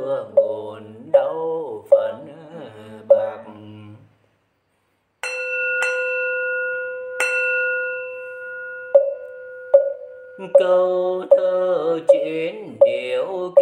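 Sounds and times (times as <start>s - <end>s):
speech: 0.1s - 1.2s, 10.4s - 13.5s
bell tolling: 5.2s - 11.5s.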